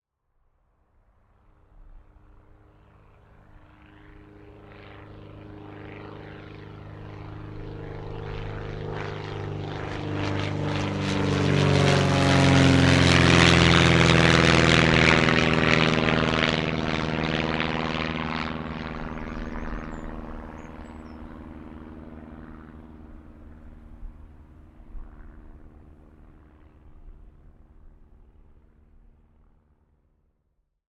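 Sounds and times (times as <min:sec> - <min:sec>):
light propeller transport aircraft taking off and passing overhead: 0:01.0 - 0:30.3.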